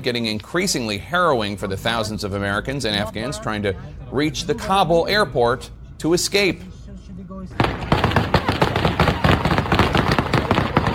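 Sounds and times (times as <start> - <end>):
speech: 0.0 - 6.8
gunfire outside airport to disperse crowds: 7.6 - 10.9.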